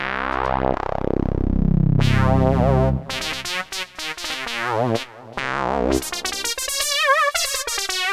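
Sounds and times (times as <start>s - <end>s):
waspy Roland JD-990 synthesizer tone: 0.2s - 3.6s, 5.4s - 8.0s.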